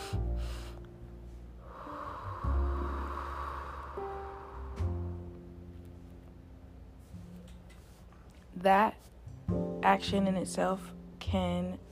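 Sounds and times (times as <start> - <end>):
person breathing deeply through the nose in a relaxation exercise: 0.0 - 5.4
speech: 8.6 - 9.1, 9.8 - 11.8.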